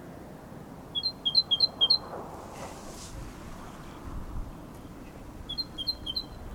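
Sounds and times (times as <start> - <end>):
Parus major repeating sharp high two-pitched notes: 0.9 - 2.1, 5.5 - 6.4
brief rustle: 2.0 - 4.1.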